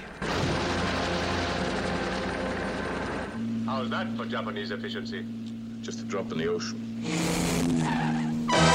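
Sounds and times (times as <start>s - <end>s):
large helicopter rotor thudding while lifting a car with a magnet: 0.0s - 3.4s
speech: 3.8s - 8.6s.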